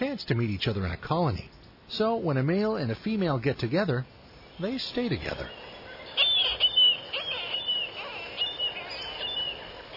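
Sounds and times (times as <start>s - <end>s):
speech: 0.0s - 5.6s
soft hiss: 0.0s - 9.9s
marbled murrelet calls: 4.3s - 9.9s.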